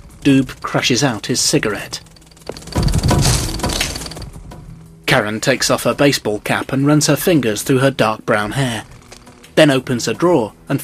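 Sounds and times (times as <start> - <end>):
rattle of broken bric-a-brac debris: 0.0 - 4.7
speech: 0.2 - 2.1, 5.2 - 8.9, 9.6 - 10.8
bric-a-brac knocked off a table and breaking: 2.0 - 4.3.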